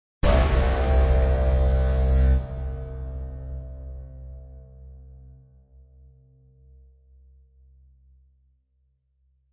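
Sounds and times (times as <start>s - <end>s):
impact hits: 0.2s - 3.6s
horn: 0.2s - 4.8s.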